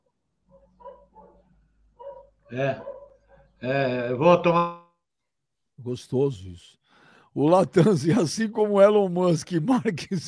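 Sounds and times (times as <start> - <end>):
several dogs barking: 0.5 - 3.6
speech: 2.5 - 2.9, 3.6 - 4.8, 5.8 - 6.8, 7.4 - 10.2.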